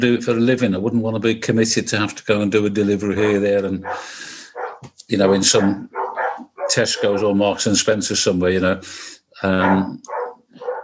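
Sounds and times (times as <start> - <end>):
speech: 0.0 - 6.0, 6.7 - 10.6
dogs barking excitedly with yelping barks: 3.2 - 7.5, 9.6 - 10.8.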